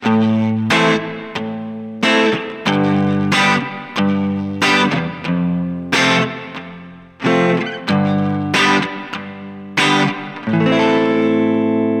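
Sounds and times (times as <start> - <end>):
clean full guitar: 0.0 - 11.9.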